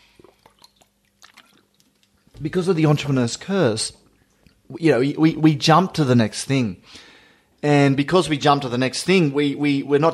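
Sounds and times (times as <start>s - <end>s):
person sipping water: 0.0s - 2.4s
speech: 2.4s - 4.0s, 4.7s - 10.1s.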